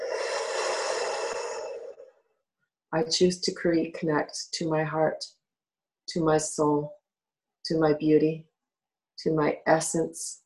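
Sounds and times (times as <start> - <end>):
deep breath in and out: 0.0 - 2.2
speech: 2.9 - 5.4, 6.1 - 7.0, 7.6 - 8.5, 9.2 - 10.4.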